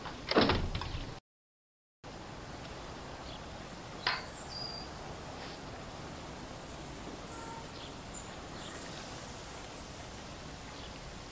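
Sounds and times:
door pushed shut with a loud sliding thud: 0.0 - 1.2
steady hiss: 2.1 - 11.2.

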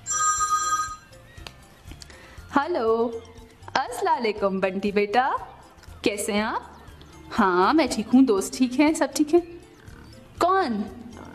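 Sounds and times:
telephone ringing with a bright electronic trill: 0.0 - 1.2
speech: 2.5 - 6.7, 7.3 - 9.5, 10.6 - 11.0.

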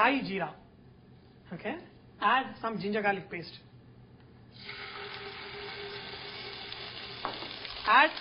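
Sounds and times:
speech: 0.0 - 0.6, 1.5 - 3.7, 4.6 - 4.9, 7.9 - 8.2
whole garam masala spices, cinnamon, cardamom and cloves sauteing in hot oil in a pan: 4.6 - 8.2.

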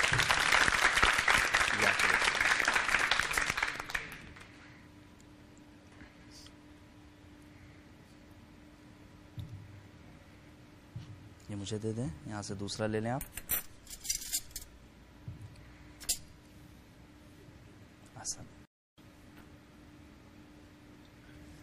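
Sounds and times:
audience applause with many hands clapping: 0.0 - 4.5
speech: 11.7 - 13.4.

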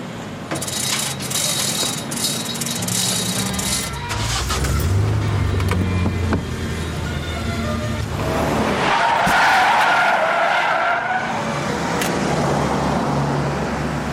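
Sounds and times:
tires screeching and skidding on pavement: 0.6 - 13.8
car engine revving and pulling away: 2.8 - 14.0.

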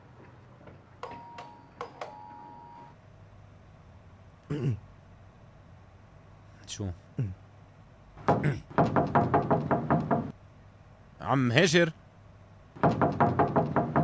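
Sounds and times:
speech: 4.5 - 4.9, 6.8 - 7.4, 8.4 - 9.2, 11.3 - 12.0
rapid firm knocking on a door: 8.2 - 10.3, 12.8 - 14.0.

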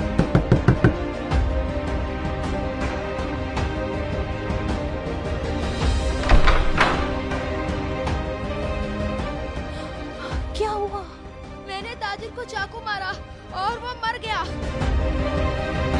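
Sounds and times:
knocking on a door: 0.2 - 1.0
steady tonal background: 0.9 - 15.9.

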